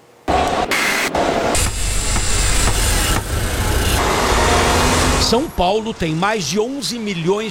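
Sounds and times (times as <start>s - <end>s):
car engines rumbling in dense city traffic: 0.3s - 7.4s
car horns in city traffic: 0.4s - 5.6s
broad wash of passing vehicles: 1.2s - 7.2s
speech: 5.3s - 7.4s.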